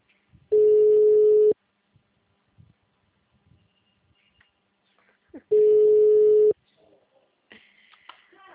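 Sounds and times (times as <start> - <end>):
phone ringback tone: 0.5 - 1.6, 5.5 - 6.6.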